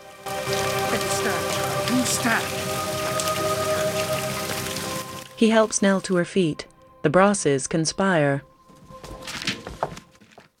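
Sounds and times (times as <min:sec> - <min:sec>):
rain falling: 0:00.0 - 0:06.8
speech: 0:02.1 - 0:03.2, 0:05.4 - 0:08.5.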